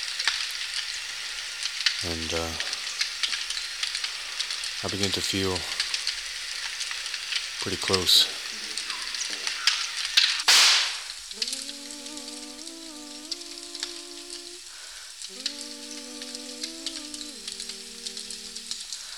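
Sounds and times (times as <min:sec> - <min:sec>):
fire crackling and sizzling: 0:00.0 - 0:19.1
sharp hissing burst: 0:00.0 - 0:19.1
speech: 0:02.0 - 0:02.7, 0:04.8 - 0:05.8, 0:07.6 - 0:08.4.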